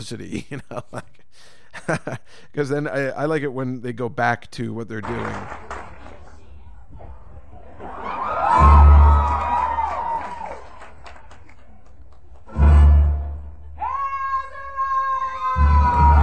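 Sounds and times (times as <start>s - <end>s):
laughter: 0.0s - 2.3s, 7.2s - 12.4s
speech: 0.0s - 5.7s
crowd cheering and whooping: 7.6s - 11.5s, 13.7s - 16.2s.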